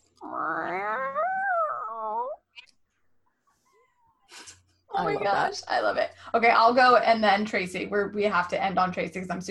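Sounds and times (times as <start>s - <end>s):
person doing a meow impression: 0.2s - 2.4s
speech: 5.0s - 9.5s.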